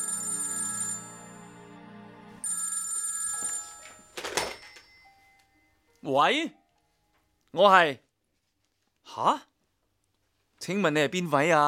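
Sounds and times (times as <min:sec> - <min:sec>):
electronic telephone ringing in a company chairman's office: 0:00.0 - 0:01.6, 0:02.4 - 0:05.6
speech: 0:06.0 - 0:06.6, 0:07.5 - 0:08.0, 0:09.1 - 0:09.5, 0:10.6 - 0:11.6.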